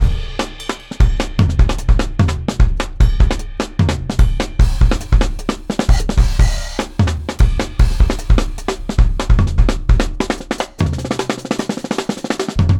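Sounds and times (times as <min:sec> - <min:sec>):
drum kit loop: 0:00.0 - 0:12.7.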